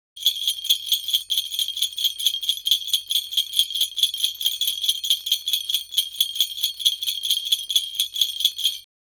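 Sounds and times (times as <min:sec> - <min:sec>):
jingle bells shaking in a steady rhythm: 0:00.2 - 0:08.9.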